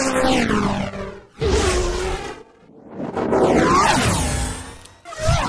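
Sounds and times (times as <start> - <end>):
synthesized whooshes: 0.1 - 5.3.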